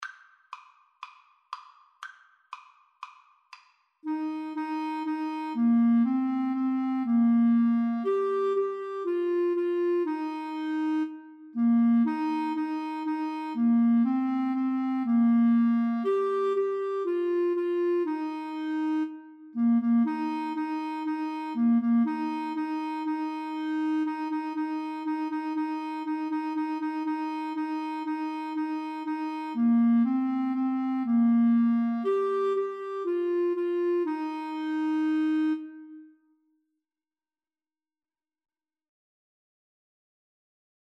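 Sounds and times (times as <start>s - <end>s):
clarinet duet playing a nursery rhyme: 4.0s - 36.3s.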